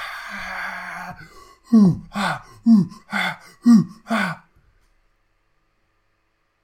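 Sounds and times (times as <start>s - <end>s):
voice imitating war cries of advancing orcs: 0.0s - 4.5s
speech: 0.3s - 4.4s.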